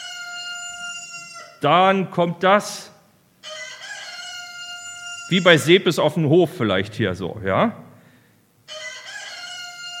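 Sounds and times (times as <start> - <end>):
rooster crowing on a farm: 0.0 - 1.6, 3.4 - 5.7, 8.7 - 9.9
speech: 1.6 - 2.9, 5.3 - 7.8.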